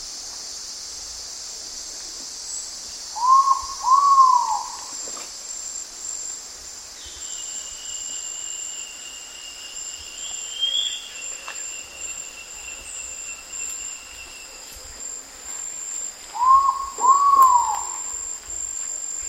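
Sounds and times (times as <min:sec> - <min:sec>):
insect buzzing in Indonesia: 0:02.5 - 0:19.2
ivory-breasted pitta double whistle in Indonesia: 0:03.2 - 0:04.9, 0:16.4 - 0:18.2.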